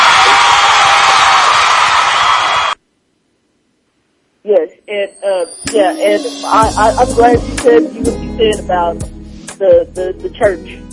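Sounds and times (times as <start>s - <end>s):
crowd cheering and applause for a guest: 0.0s - 2.8s
speech: 4.9s - 10.8s.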